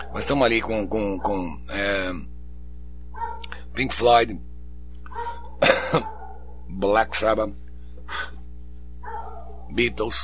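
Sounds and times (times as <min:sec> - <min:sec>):
dog barking: 0:00.0 - 0:00.4, 0:01.1 - 0:01.5, 0:03.2 - 0:03.5, 0:05.1 - 0:06.6, 0:09.0 - 0:10.0
steady low hum: 0:00.0 - 0:10.2
speech: 0:00.2 - 0:02.3, 0:03.8 - 0:04.5, 0:06.7 - 0:08.2, 0:09.7 - 0:10.2.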